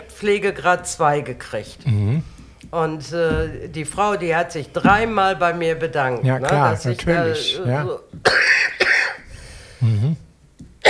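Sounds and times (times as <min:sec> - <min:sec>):
speech: 0:00.2 - 0:08.8
person in a harsh coughing fit: 0:08.3 - 0:09.3.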